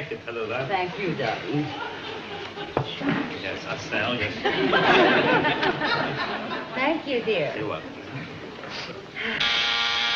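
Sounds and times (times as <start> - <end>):
speech: 0.3 - 2.0, 2.6 - 9.5
laughter: 1.4 - 9.4
electric buzzer under a table: 9.4 - 10.1.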